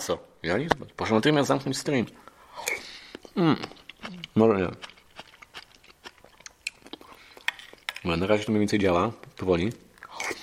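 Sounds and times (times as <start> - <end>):
speech: 0.1 - 2.8, 3.4 - 4.9, 8.0 - 9.8
person eating soup: 2.2 - 10.4
soft chewing and crunchy mouth noises while eating soup: 2.5 - 10.4.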